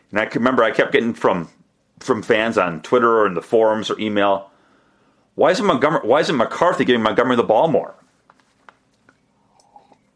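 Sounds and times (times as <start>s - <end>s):
speech: 0.1s - 4.5s, 5.4s - 8.1s
sipping coffee: 9.2s - 10.1s
swallow: 9.4s - 10.1s.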